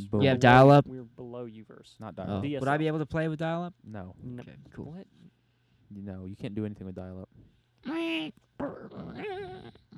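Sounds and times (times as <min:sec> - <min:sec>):
speech: 0:00.0 - 0:05.2, 0:05.9 - 0:09.9
person imitating a dog whimpering: 0:07.8 - 0:09.9.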